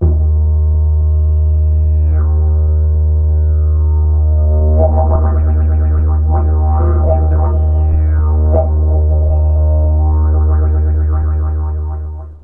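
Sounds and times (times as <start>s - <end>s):
didgeridoo notes: 0.0s - 12.4s.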